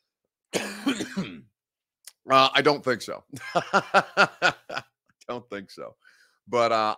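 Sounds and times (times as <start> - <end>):
speech: 0.5 - 1.4, 2.3 - 4.6, 5.3 - 6.9
loud harsh cough with raspy throat-clearing rattle: 0.5 - 1.5
laughter: 3.3 - 4.9.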